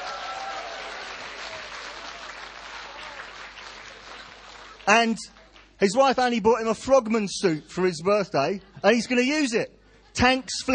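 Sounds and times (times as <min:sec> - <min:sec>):
audience applause for a pastor on his birthday: 0:00.0 - 0:05.8
speech: 0:04.9 - 0:10.7.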